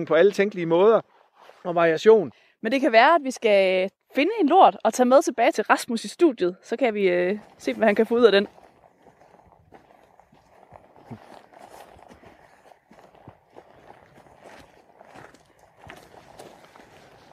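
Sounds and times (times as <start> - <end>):
speech: 0.0 - 8.6
wind: 0.0 - 17.3
footsteps crunching outdoors walking down a slope: 7.1 - 17.3.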